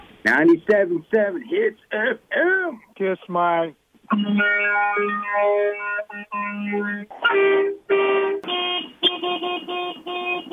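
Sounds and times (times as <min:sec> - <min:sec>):
speech: 0:00.4 - 0:08.2
loud brassy multi-toned boat horn blasts: 0:07.3 - 0:10.5.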